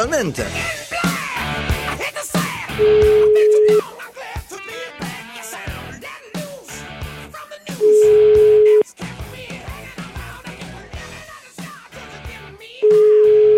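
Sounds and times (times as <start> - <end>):
busy music: 0.0 - 13.5
telephone line tone beeps as a radio show places a call: 2.8 - 3.8, 7.8 - 8.8, 12.9 - 13.5.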